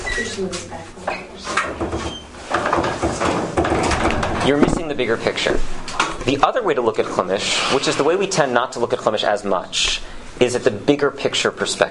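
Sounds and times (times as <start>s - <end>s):
busy noisy room background: 0.0s - 11.8s
speech: 0.2s - 1.8s, 4.5s - 11.8s
door being pushed shut: 1.6s - 5.2s.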